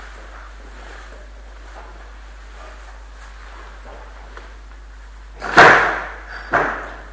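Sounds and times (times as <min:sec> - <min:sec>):
door shutting with a thud: 0:05.4 - 0:07.0.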